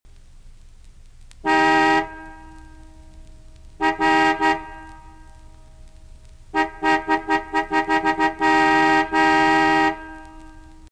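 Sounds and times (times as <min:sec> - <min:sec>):
car horn: 0:01.4 - 0:02.9, 0:03.8 - 0:05.4, 0:06.5 - 0:10.8.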